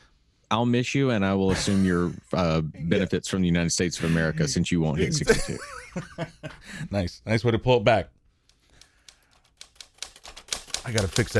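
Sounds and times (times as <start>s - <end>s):
speech: 0.5s - 8.2s, 10.8s - 11.3s
laughter: 4.0s - 6.9s
crisp clacking typewriter keystrokes: 8.8s - 11.3s.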